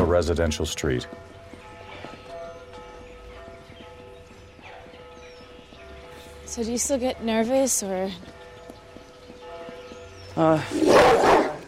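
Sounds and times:
speech: 0:00.1 - 0:01.3, 0:06.5 - 0:08.4, 0:10.4 - 0:11.3
large dog barking behind a fence: 0:10.7 - 0:11.6.

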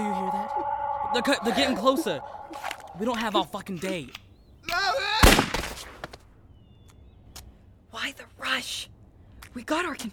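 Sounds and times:
speech: 0:01.1 - 0:04.8, 0:08.1 - 0:08.9, 0:09.6 - 0:10.1
gunshot: 0:05.2 - 0:05.8.

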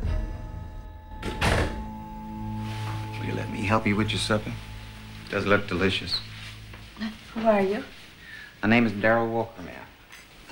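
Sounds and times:
faint low hum: 0:00.6 - 0:10.5
bedroom door shutting: 0:01.2 - 0:01.9
speech: 0:03.2 - 0:04.7, 0:05.3 - 0:06.3, 0:07.0 - 0:08.0, 0:08.6 - 0:10.5.

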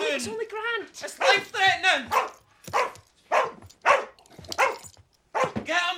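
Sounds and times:
speech: 0:00.2 - 0:02.8
sheepdog barking: 0:01.2 - 0:01.5, 0:02.1 - 0:05.6.

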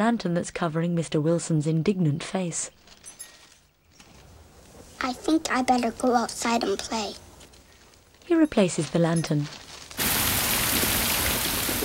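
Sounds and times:
speech: 0:00.0 - 0:02.9, 0:05.0 - 0:07.2, 0:08.3 - 0:09.6
heavy rain pouring down outside an airport terminal building: 0:10.0 - 0:11.8.

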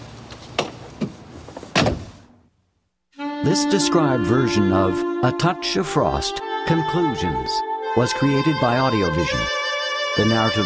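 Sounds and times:
car door opening with latch and handle clicks: 0:00.6 - 0:02.2
speech: 0:03.4 - 0:09.6, 0:10.2 - 0:10.6.

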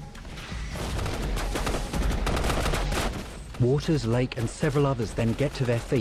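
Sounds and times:
gunfire volley in a battle: 0:00.7 - 0:05.9
speech: 0:03.6 - 0:05.9.

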